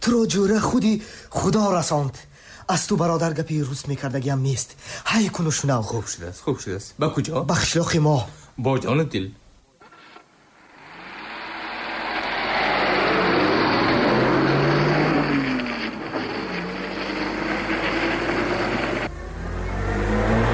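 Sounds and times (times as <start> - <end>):
speech: 0.0 - 9.4
car engine revving: 10.5 - 20.5.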